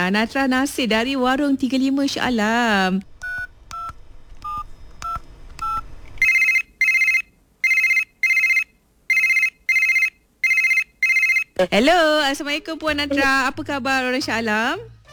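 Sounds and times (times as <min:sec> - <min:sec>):
speech: 0:00.0 - 0:03.1, 0:11.6 - 0:15.1
telephone keypad tones: 0:03.2 - 0:11.6.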